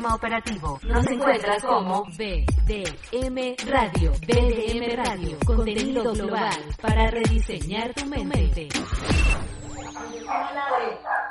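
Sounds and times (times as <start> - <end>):
speech: 0.0 - 9.6
dog barking: 9.9 - 11.3.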